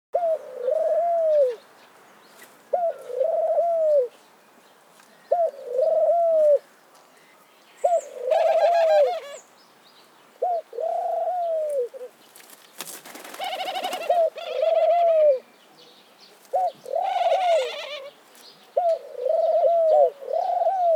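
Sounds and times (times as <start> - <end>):
dove cooing: 0.2 - 1.6, 2.7 - 4.1, 5.3 - 6.6, 7.8 - 9.4, 10.4 - 12.2, 13.2 - 15.5, 16.5 - 18.2, 18.8 - 20.9.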